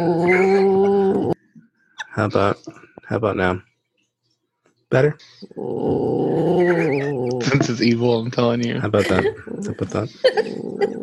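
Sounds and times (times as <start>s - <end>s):
speech: 0.0s - 0.6s, 2.2s - 3.7s, 4.9s - 6.9s, 7.5s - 11.0s
dog whining howl: 0.0s - 1.4s, 5.5s - 7.6s
laughter: 6.7s - 11.0s.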